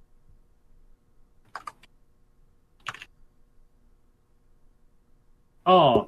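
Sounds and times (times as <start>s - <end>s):
computer keyboard typing: 1.5s - 1.9s, 2.8s - 3.1s.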